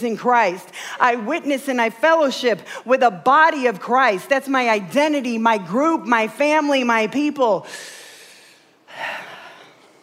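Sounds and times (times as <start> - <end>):
speech: 0.0 - 8.0
person's sharp intake of breath: 7.6 - 9.8.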